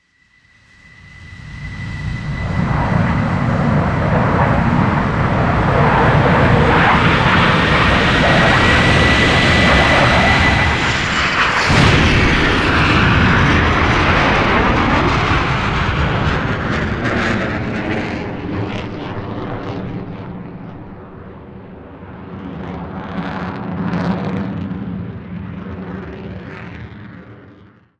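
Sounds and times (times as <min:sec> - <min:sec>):
F15 jet: 0:00.5 - 0:27.8.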